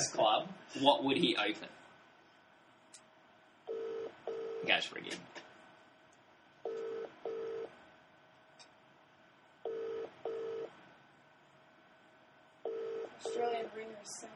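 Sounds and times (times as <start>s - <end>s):
speech: 0.1s - 1.8s, 4.6s - 5.4s
Australian phone ringback tone double burst: 3.7s - 4.6s, 6.7s - 7.7s, 9.7s - 10.7s, 12.7s - 13.4s.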